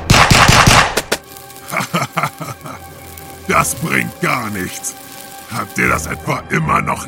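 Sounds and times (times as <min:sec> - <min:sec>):
loud fast burst of gunfire: 0:00.0 - 0:01.2
laughter: 0:01.6 - 0:04.1
speech: 0:03.5 - 0:07.0.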